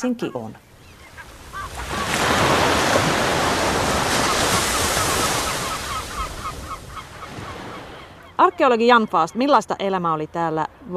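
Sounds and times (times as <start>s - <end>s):
speech: 0.0s - 0.6s, 8.4s - 10.9s
sea waves washing onto a sandy beach at Jokiniemi in Vantaa: 1.2s - 8.2s.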